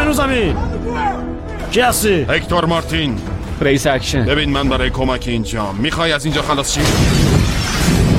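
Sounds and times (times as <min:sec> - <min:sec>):
speech: 0:00.1 - 0:07.3
gunshots being fired: 0:06.5 - 0:08.1.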